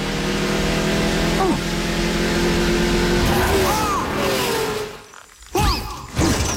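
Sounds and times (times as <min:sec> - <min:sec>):
loud race car engine droning and revving: 0:00.0 - 0:05.1.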